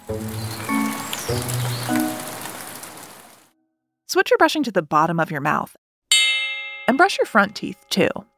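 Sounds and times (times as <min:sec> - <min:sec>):
soft musical tones: 0:00.0 - 0:02.8
steady rain pattering: 0:00.0 - 0:03.5
speech: 0:00.1 - 0:00.4, 0:04.1 - 0:05.8, 0:06.9 - 0:08.3.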